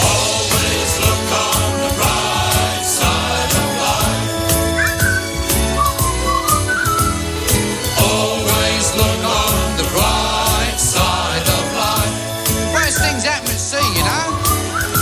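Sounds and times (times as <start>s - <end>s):
full steady band accompaniment: 0.0s - 15.0s
jaunty whistled melody from a film's closing song: 3.4s - 8.0s, 12.4s - 15.0s.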